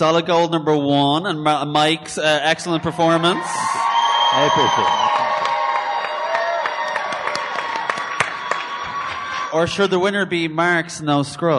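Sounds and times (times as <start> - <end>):
speech: 0.0 - 5.2, 9.5 - 11.5
audience cheering and whooping: 2.7 - 9.8
scattered hand claps: 4.1 - 9.5.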